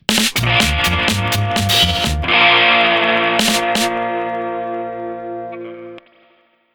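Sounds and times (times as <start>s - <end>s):
rockabilly music: 0.0s - 4.6s.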